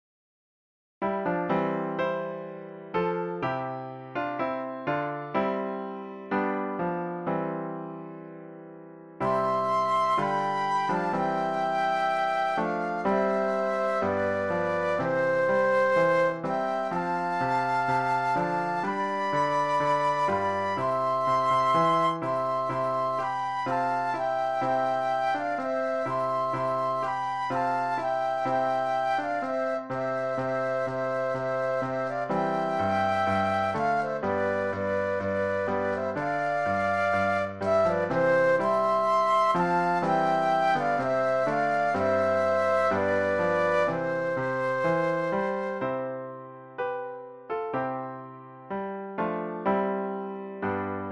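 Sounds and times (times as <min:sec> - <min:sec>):
piano playing Christmas music: 0:01.0 - 0:51.1
flute duet playing Christmas music: 0:09.2 - 0:46.0.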